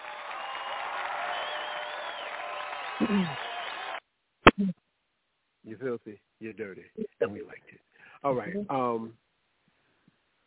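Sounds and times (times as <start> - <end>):
audience applause: 0.0 - 4.0
speech: 3.0 - 3.5, 4.6 - 4.8, 5.7 - 9.2.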